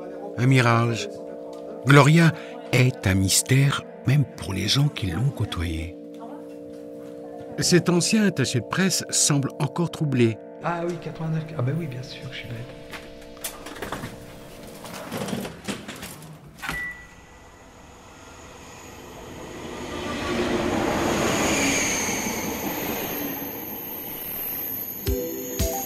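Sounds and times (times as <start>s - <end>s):
speech: 0.4s - 1.2s, 1.8s - 6.0s, 7.6s - 13.6s
RER commuter train rolling on tracks toward Goussainville France: 17.6s - 25.1s.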